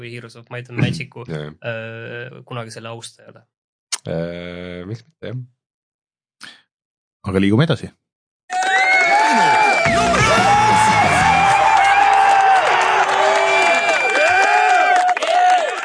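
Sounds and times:
speech: 0:00.0 - 0:05.6, 0:07.2 - 0:08.6
crowd cheering and shouting: 0:08.5 - 0:15.8.

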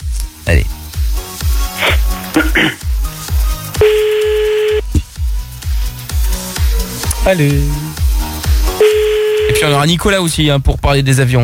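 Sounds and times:
rhythmic music with a regular beat: 0:00.0 - 0:11.4
ringback tone of an outgoing telephone call: 0:03.8 - 0:04.8, 0:08.8 - 0:09.6
speech: 0:07.3 - 0:07.9, 0:09.6 - 0:11.4.

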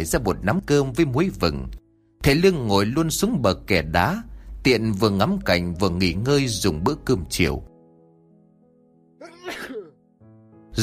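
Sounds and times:
speech: 0:00.0 - 0:07.7
man sneezing on a stone embankment by the water: 0:09.2 - 0:10.0.

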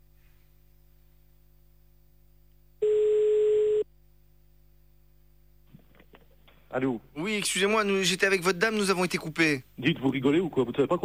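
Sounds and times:
telephone ringback tone while calling someone back: 0:02.8 - 0:03.9
speech: 0:06.8 - 0:11.0.

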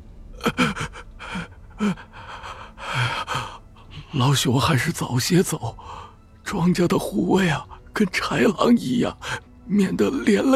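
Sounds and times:
old man panting heavily in fear: 0:00.6 - 0:04.0
speech: 0:01.8 - 0:02.1, 0:04.2 - 0:10.5.

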